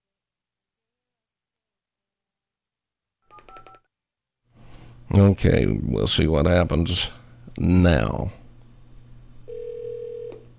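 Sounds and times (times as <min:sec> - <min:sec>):
electronic telephone keypad tones as a phone number is redialed: 0:03.3 - 0:03.8, 0:09.5 - 0:10.4
speech: 0:05.1 - 0:08.4.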